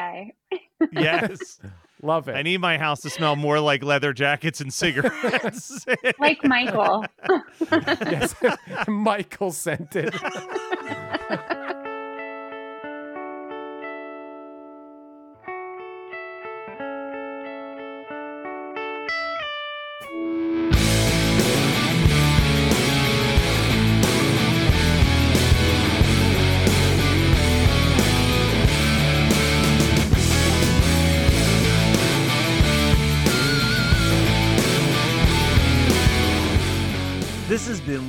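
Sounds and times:
speech: 0.2s - 11.5s
laughter: 0.8s - 11.8s
loud rock band song with drums, distorted electric guitars and sung vocals: 20.6s - 37.9s.

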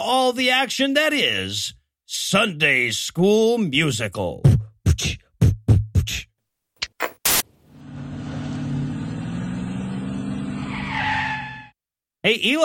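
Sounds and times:
speech: 0.0s - 5.1s, 12.2s - 12.6s
sharp noise bursts: 7.0s - 7.6s
rough car engine rumble: 7.6s - 10.8s
new car tires screeching in a long skid: 7.7s - 11.8s.

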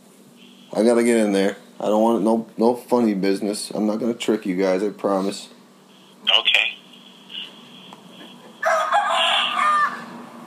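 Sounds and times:
quiet hum: 0.0s - 10.4s
speech: 0.7s - 5.6s
rooster crowing: 8.4s - 10.4s.

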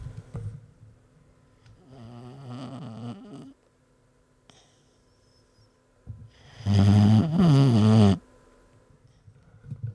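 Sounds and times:
boxer dog snoring: 0.0s - 0.4s, 1.8s - 3.6s, 6.4s - 8.2s.

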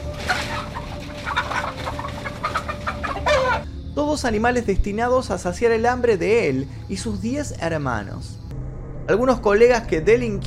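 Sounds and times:
several chickens clucking: 0.0s - 3.7s
steady low rumble: 0.0s - 10.4s
speech: 4.1s - 8.4s, 9.1s - 10.4s.

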